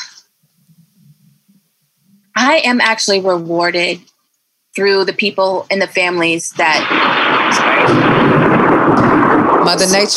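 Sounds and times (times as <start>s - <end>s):
speech: 2.4s - 4.1s, 4.8s - 8.4s, 9.6s - 10.1s
thunder rumbling: 6.2s - 10.1s.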